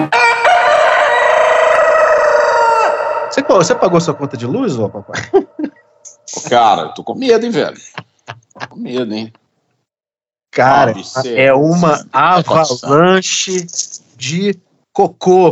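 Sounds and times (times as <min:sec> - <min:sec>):
rooster crowing: 0:00.1 - 0:05.6
speech: 0:03.5 - 0:05.6, 0:06.3 - 0:07.9, 0:08.8 - 0:09.4, 0:10.6 - 0:15.4
laughter: 0:04.9 - 0:09.2.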